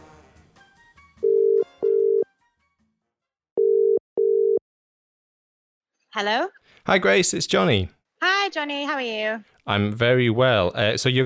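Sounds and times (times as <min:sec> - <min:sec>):
telephone ringing tone as a call is placed: 0:01.2 - 0:02.3, 0:03.6 - 0:04.6
speech: 0:06.2 - 0:11.2.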